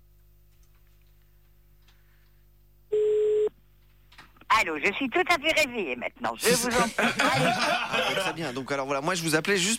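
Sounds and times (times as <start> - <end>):
phone ringing tone, a steady mid-pitched electronic beep: 2.9 - 3.5
speech: 4.6 - 9.7
laughter: 6.5 - 8.8.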